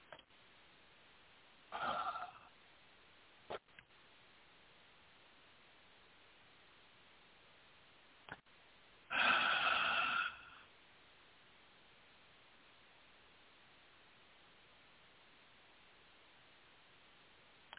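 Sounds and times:
faint steady hiss: 0.0s - 17.7s
deep breath: 9.1s - 10.7s.

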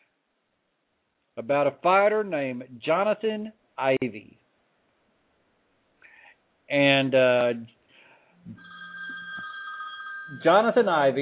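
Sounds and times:
speech: 1.4s - 4.4s, 6.7s - 7.8s, 10.3s - 11.2s
phone ringing faintly with an electronic ringtone: 8.5s - 11.2s.

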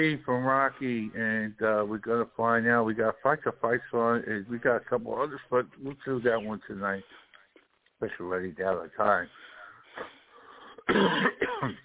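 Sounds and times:
speech: 0.0s - 7.2s, 8.0s - 10.2s, 10.9s - 11.8s
person with a lingering cough coughing: 10.8s - 11.8s
throat clearing: 10.8s - 11.8s.

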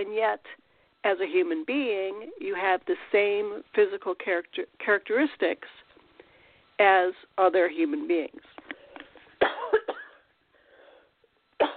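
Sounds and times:
speech: 0.0s - 5.8s, 6.8s - 8.5s
person coughing sharply: 9.4s - 10.3s, 11.6s - 11.7s.

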